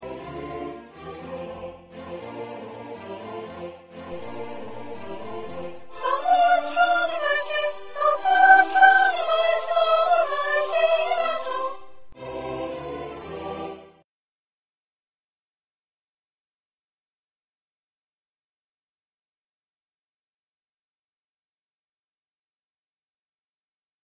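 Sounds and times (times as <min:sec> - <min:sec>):
first soprano singing: 0:00.0 - 0:14.0.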